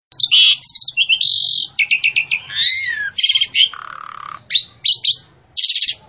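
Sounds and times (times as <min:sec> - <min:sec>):
female Javan pied starling singing loudly: 0:00.1 - 0:06.0.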